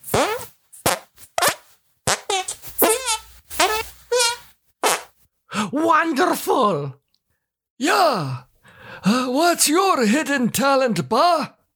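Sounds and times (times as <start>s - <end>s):
squelchy fart-like noises made by squeezing hands together: 0.0s - 5.2s
speech: 5.7s - 7.0s, 7.8s - 11.6s.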